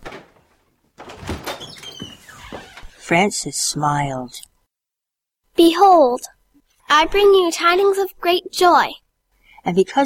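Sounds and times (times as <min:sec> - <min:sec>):
church sanctuary door swinging open: 0:00.0 - 0:03.1
rustling and shuffling: 0:00.0 - 0:03.1
speech: 0:03.1 - 0:04.5, 0:05.6 - 0:09.0, 0:09.6 - 0:10.0.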